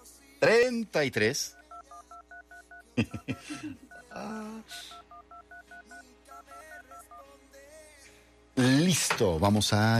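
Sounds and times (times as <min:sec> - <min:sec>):
speech: 0:00.4 - 0:01.6, 0:03.0 - 0:05.0, 0:08.6 - 0:09.9
telephone keypad dialing tones during a radio call-in contest: 0:01.5 - 0:02.8, 0:04.9 - 0:07.2.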